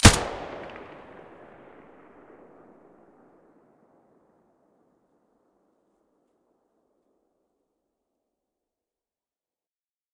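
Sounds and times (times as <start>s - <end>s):
APS gun muzzle sound: 0.0s - 2.5s.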